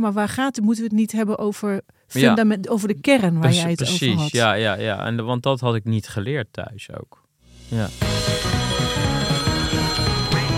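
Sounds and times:
speech: 0:00.0 - 0:08.3
telephone ringing with an incoming call: 0:08.2 - 0:10.5.

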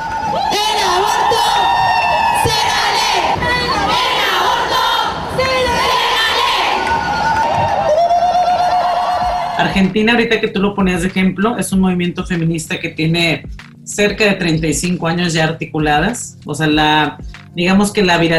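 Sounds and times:
large protest crowd chanting and shouting slogans in unison: 0:00.0 - 0:09.6
high-pitched shouts: 0:00.0 - 0:09.7
speech: 0:09.8 - 0:18.3.

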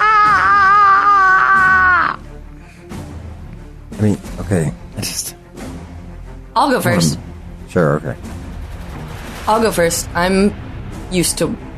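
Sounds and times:
person screaming: 0:00.0 - 0:02.2
speech: 0:04.0 - 0:05.4, 0:06.6 - 0:08.3, 0:09.5 - 0:11.6.

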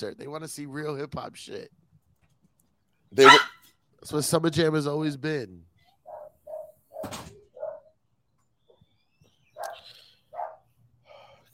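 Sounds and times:
speech: 0:00.0 - 0:01.8, 0:03.1 - 0:05.7
two dogs barking in short sharp yaps: 0:03.2 - 0:03.6, 0:06.1 - 0:07.9, 0:09.5 - 0:10.7.

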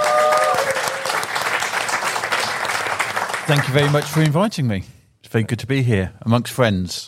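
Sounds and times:
audience applause welcoming a speaker: 0:00.0 - 0:04.4
speech: 0:03.5 - 0:07.0.

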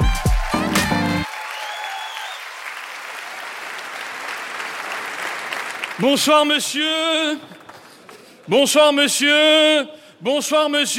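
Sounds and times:
audience applauding: 0:00.0 - 0:08.5
speech: 0:06.0 - 0:07.6, 0:08.5 - 0:10.9.

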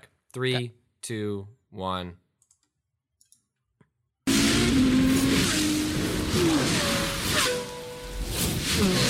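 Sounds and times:
speech: 0:00.4 - 0:02.2, 0:08.8 - 0:09.0
car engines revving: 0:04.3 - 0:07.2.

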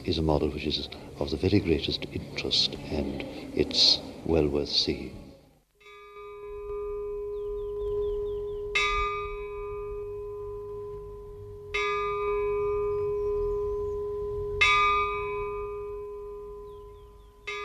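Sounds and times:
speech: 0:00.0 - 0:05.2
chapel bell tolling slowly: 0:05.8 - 0:17.6.

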